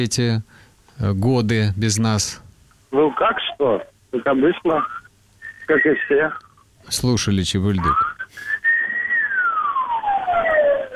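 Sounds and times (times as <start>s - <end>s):
speech: 0.0s - 5.0s, 5.7s - 8.5s
siren of a passing vehicle: 9.2s - 10.9s.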